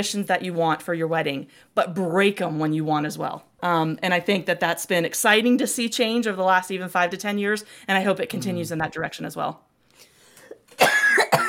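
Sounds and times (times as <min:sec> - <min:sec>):
speech: 0:00.0 - 0:09.7
loud raspy cough: 0:10.8 - 0:11.4.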